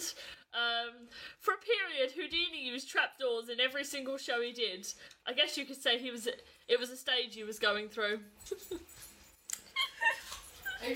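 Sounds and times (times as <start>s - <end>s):
speech: 2.0s - 9.1s, 10.8s - 10.9s
dog whimpering: 9.7s - 10.9s.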